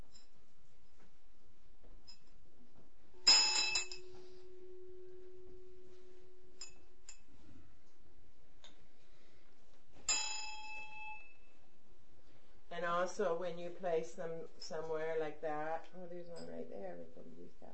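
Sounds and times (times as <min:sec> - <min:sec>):
ritual hand bell struck and ringing: 0:03.2 - 0:05.6, 0:10.0 - 0:11.4
speech: 0:12.8 - 0:17.7.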